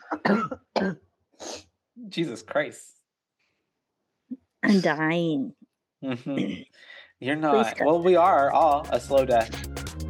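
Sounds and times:
person coughing harshly: 0:00.0 - 0:01.0
speech: 0:00.1 - 0:01.0, 0:02.1 - 0:03.0, 0:04.7 - 0:09.8.

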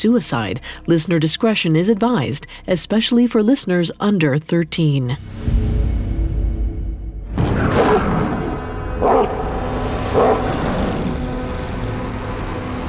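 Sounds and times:
speech: 0:00.0 - 0:05.6
constant low rumble: 0:05.2 - 0:12.8
deep distant monstrous barks: 0:07.4 - 0:12.6.

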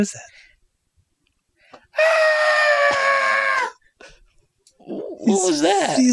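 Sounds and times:
speech: 0:00.0 - 0:00.4, 0:02.0 - 0:02.4, 0:04.9 - 0:06.1
person screaming in a hallway: 0:02.0 - 0:03.8.

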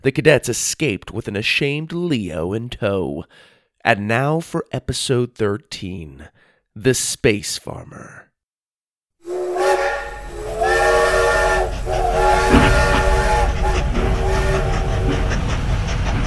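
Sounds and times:
speech: 0:00.0 - 0:08.3
train steam whistle blasts: 0:09.2 - 0:15.3
steam train rumbling and hissing: 0:09.2 - 0:16.2.

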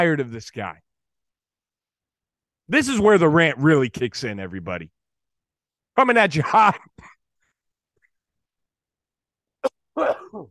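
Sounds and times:
speech: 0:00.0 - 0:00.9, 0:02.7 - 0:05.0, 0:06.0 - 0:07.1, 0:10.0 - 0:10.4
person coughing into a throaty rasp: 0:06.8 - 0:07.2, 0:09.6 - 0:10.4.

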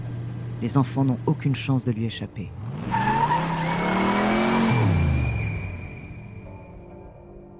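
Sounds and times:
speech: 0:00.6 - 0:03.0
car engine revving: 0:02.5 - 0:05.8
car tires screeching while swerving toward the sidewalk: 0:02.5 - 0:06.7.

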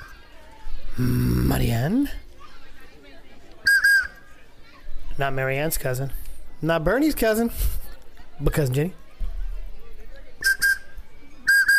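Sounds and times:
faint low murmur: 0:00.0 - 0:11.7
speech: 0:01.0 - 0:02.3, 0:05.2 - 0:07.8, 0:08.4 - 0:09.0
person whistling short notes: 0:10.4 - 0:10.9, 0:11.5 - 0:11.7.

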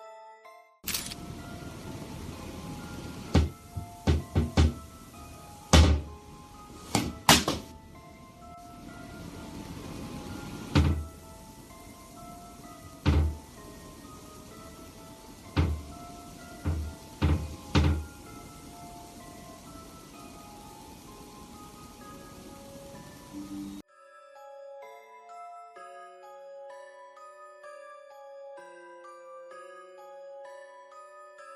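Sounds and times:
steady hiss: 0:00.9 - 0:23.8
sharp wooden knocks and thumps inside a cupboard where a doll is stored: 0:03.3 - 0:04.8, 0:05.7 - 0:06.1, 0:06.9 - 0:07.7, 0:10.7 - 0:11.0, 0:13.0 - 0:13.4, 0:15.5 - 0:15.9, 0:16.6 - 0:18.0
cupboard door creaking and clunking open: 0:10.7 - 0:11.1, 0:16.7 - 0:18.1.

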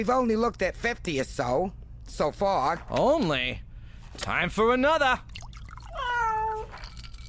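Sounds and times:
speech: 0:00.0 - 0:05.3
cat meowing: 0:05.9 - 0:06.7.

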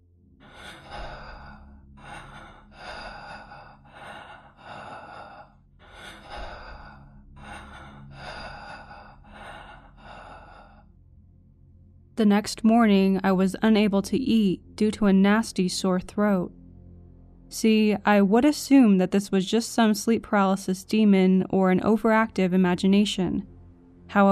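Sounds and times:
heavy breathing close to the ear: 0:00.4 - 0:10.9
speech: 0:12.2 - 0:16.6, 0:17.5 - 0:23.5, 0:24.1 - 0:24.3.

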